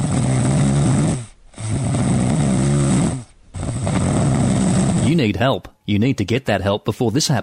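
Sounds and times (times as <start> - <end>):
loud rattling snoring in a bedroom at night: 0.0 - 5.3
speech: 5.2 - 7.4.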